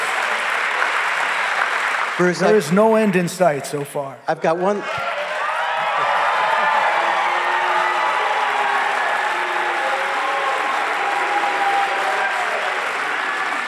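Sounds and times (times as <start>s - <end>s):
scattered clapping: 0.0s - 2.4s, 5.9s - 13.6s
speech: 2.2s - 5.0s
large audience booing: 4.9s - 13.6s.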